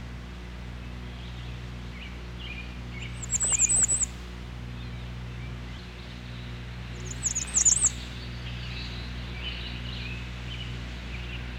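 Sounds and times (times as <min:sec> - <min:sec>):
low steady hum: 0:00.0 - 0:11.5
Bay-breasted warbler song: 0:01.2 - 0:04.2, 0:05.7 - 0:11.5.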